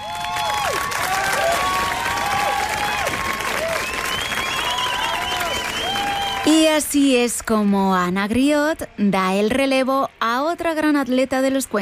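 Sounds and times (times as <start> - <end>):
scattered cheers: 0.0 - 6.7
big crowd giving a standing ovation: 0.0 - 8.1
whistles: 3.7 - 6.4
speech: 6.8 - 11.8.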